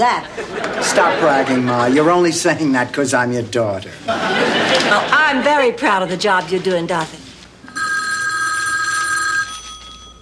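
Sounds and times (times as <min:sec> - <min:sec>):
speech: 0:00.0 - 0:07.2
laughter: 0:00.2 - 0:02.2, 0:04.0 - 0:05.6
old-fashioned telephone bell ringing: 0:07.7 - 0:10.2.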